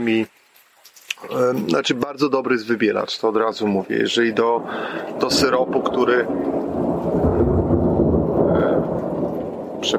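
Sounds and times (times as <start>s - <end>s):
speech: 0.0s - 0.4s, 1.2s - 6.6s
thunder rumbling: 1.3s - 9.9s.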